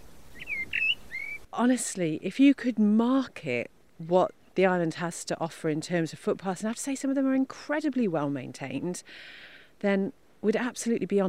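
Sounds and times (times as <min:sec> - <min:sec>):
blackbird singing fluting phrases: 0:00.3 - 0:01.5
speech: 0:01.6 - 0:11.2.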